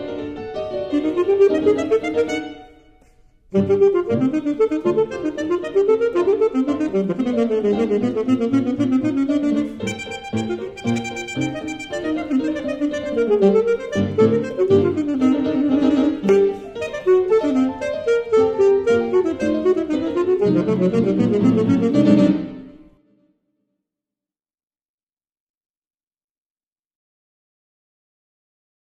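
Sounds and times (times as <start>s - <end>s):
alto saxophone playing a sonata: 0.7s - 23.0s.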